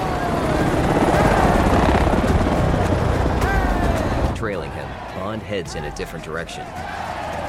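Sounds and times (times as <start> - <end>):
helicopter with thudding rotor and roaring engine passing overhead: 0.0 - 5.1
dense crowd noise: 0.0 - 7.4
speech: 5.7 - 7.0.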